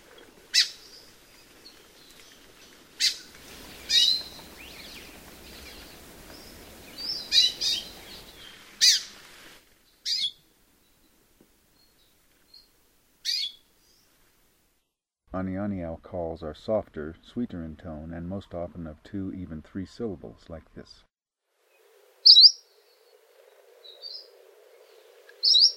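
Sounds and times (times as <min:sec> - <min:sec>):
Amakihi giving raspy squawky buzzy calls: 0:00.5 - 0:01.0, 0:03.0 - 0:05.8, 0:07.0 - 0:09.2, 0:10.0 - 0:10.4, 0:13.2 - 0:13.6, 0:22.2 - 0:22.7, 0:25.4 - 0:25.7
speech: 0:15.4 - 0:21.1.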